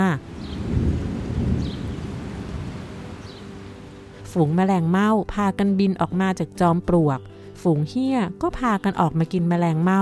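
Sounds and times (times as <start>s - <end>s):
out-of-season rain falling in the dry season: 0.0s - 4.1s
speech: 0.1s - 0.3s, 4.4s - 10.0s
deep rolling thunder: 0.3s - 3.3s.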